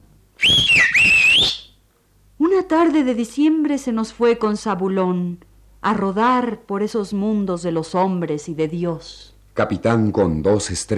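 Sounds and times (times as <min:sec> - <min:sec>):
milkman's loud whistle: 0:00.4 - 0:01.8
speech: 0:02.7 - 0:10.9.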